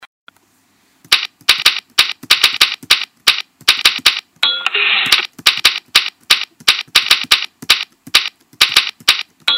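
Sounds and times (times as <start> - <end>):
typewriter typing: 1.1 - 4.2, 5.0 - 9.4.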